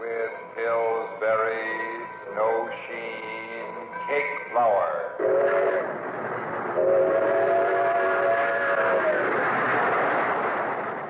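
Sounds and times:
sustained multi-tone train whistle: 0:00.0 - 0:06.0, 0:06.8 - 0:09.5
trains rushing toward Grand Central Station along the Hudson River: 0:00.0 - 0:11.0.

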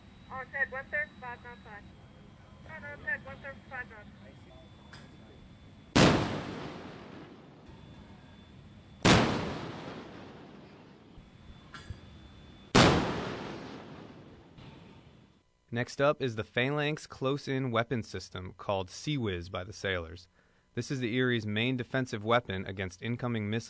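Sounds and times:
electronic beeping or chirping tones: 0:00.0 - 0:09.1, 0:09.7 - 0:12.8
speech: 0:00.4 - 0:02.1, 0:02.7 - 0:05.0, 0:15.7 - 0:23.6
large 5-inch naval cannon firing: 0:05.9 - 0:07.9, 0:09.0 - 0:11.2, 0:12.7 - 0:15.2.

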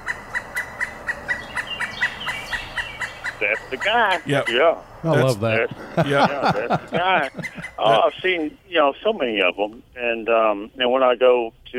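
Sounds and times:
pileated woodpecker calling: 0:00.0 - 0:05.0, 0:06.6 - 0:08.4
speech: 0:03.4 - 0:11.7
laughter: 0:04.2 - 0:08.5.

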